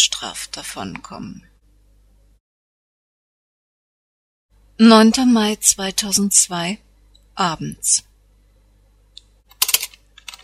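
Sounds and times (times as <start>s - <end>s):
speech: 0.1s - 1.5s, 4.8s - 8.1s
fast typing on a computer keyboard: 9.5s - 10.4s.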